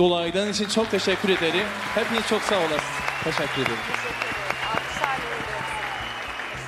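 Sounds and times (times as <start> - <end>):
speech: 0.0 - 4.3
audience applauding: 0.4 - 6.6.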